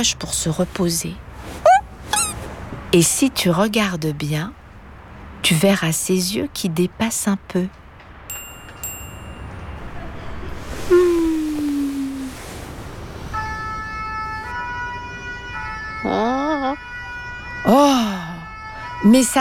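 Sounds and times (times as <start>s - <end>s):
speech: 0.0s - 1.7s, 2.9s - 4.6s, 5.4s - 7.8s, 19.2s - 19.3s
rumbling traffic: 0.0s - 19.3s
fire engine siren in the street: 13.3s - 19.3s.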